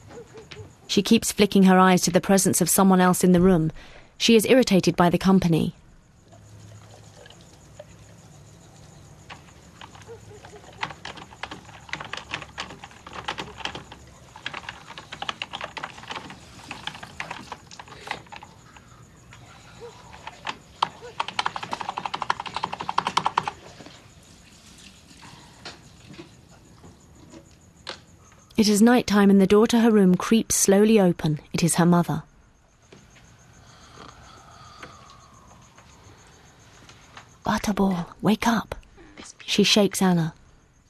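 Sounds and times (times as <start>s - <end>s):
speech: 0.9s - 5.8s, 28.6s - 32.3s, 37.8s - 38.8s, 39.5s - 40.4s
typing on a computer keyboard: 9.2s - 24.0s.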